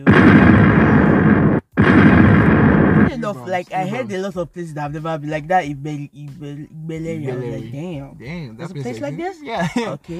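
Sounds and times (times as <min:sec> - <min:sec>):
bomb explosion sound effect with rumbling roar: 0:00.0 - 0:03.2
speech: 0:03.2 - 0:10.1.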